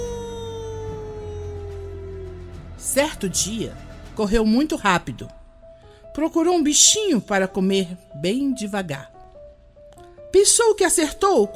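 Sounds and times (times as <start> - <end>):
wolf howling at night: 0.0 - 2.9
speech: 2.8 - 5.4, 6.2 - 9.1, 10.3 - 11.5.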